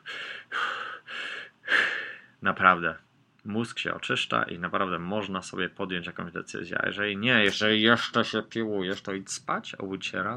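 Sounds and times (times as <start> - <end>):
slow deep breaths: 0.0 - 2.4
speech: 2.4 - 10.3.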